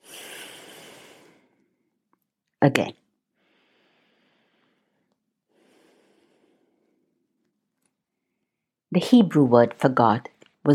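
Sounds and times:
person breathing slowly and deeply: 0:00.0 - 0:02.0, 0:03.4 - 0:07.3
speech: 0:02.6 - 0:03.0, 0:09.0 - 0:10.7.

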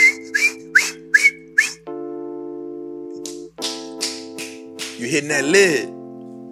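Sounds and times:
person whistling imitating a teapot: 0:00.0 - 0:01.9
speech: 0:05.0 - 0:06.0.

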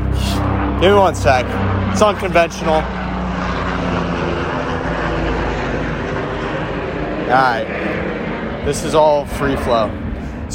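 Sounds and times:
propeller airplane passing overhead: 0:00.0 - 0:10.5
speech: 0:00.8 - 0:03.0, 0:07.3 - 0:10.0.

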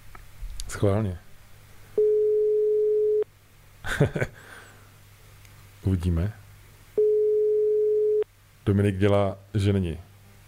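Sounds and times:
faint noise: 0:00.0 - 0:10.4
speech: 0:00.8 - 0:01.2, 0:03.9 - 0:04.5, 0:05.8 - 0:06.4, 0:08.7 - 0:10.1
phone ringback tone: 0:02.0 - 0:03.2, 0:07.0 - 0:08.2
laughter: 0:03.9 - 0:04.4.

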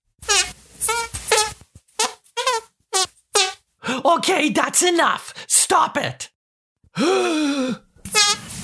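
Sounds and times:
fart noises made with the hands: 0:00.2 - 0:03.6, 0:08.1 - 0:08.5
speech: 0:04.0 - 0:06.3, 0:07.0 - 0:07.8.

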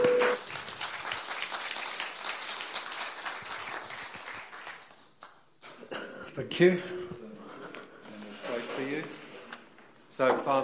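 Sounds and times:
audience applauding: 0:00.0 - 0:05.1
speech: 0:06.4 - 0:07.0, 0:10.2 - 0:10.6.

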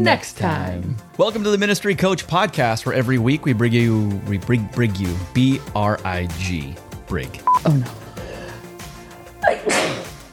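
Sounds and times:
speech: 0:00.0 - 0:08.0
person sneezing: 0:07.6 - 0:08.1, 0:09.4 - 0:10.2.

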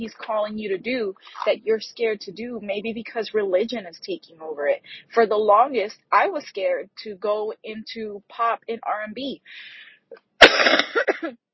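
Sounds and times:
speech: 0:00.0 - 0:11.4
person coughing with raspy hacks: 0:10.4 - 0:11.4.

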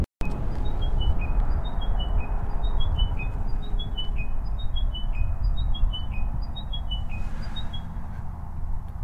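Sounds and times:
low rumble of traffic: 0:00.0 - 0:09.0
chiming wedgebill calls: 0:00.7 - 0:07.9.

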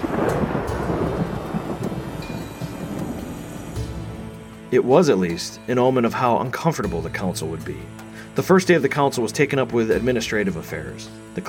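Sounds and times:
deep rumbling thunder in Rome: 0:00.0 - 0:04.4
heavy unrelenting rain in Rome: 0:00.0 - 0:04.7
speech: 0:04.7 - 0:11.4.

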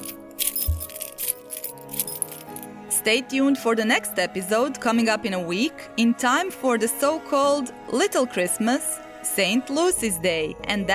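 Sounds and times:
bunch of keys jangling: 0:00.0 - 0:02.7
speech: 0:03.0 - 0:10.9.

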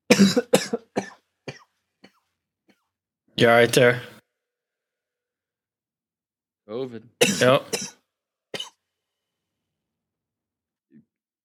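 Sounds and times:
person coughing while drinking beer: 0:00.1 - 0:02.3, 0:07.2 - 0:08.0, 0:08.6 - 0:08.8
speech: 0:00.2 - 0:00.8, 0:03.4 - 0:04.2, 0:06.7 - 0:08.0.

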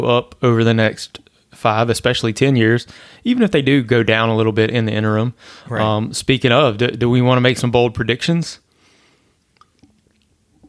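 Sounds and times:
speech: 0:00.0 - 0:08.6
wet mouth clicks: 0:09.4 - 0:10.4
person sipping a drink: 0:09.4 - 0:10.6.

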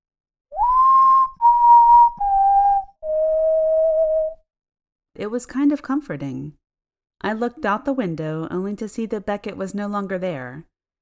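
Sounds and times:
soft whistling: 0:00.5 - 0:04.4
speech: 0:05.2 - 0:06.6, 0:07.2 - 0:10.7.

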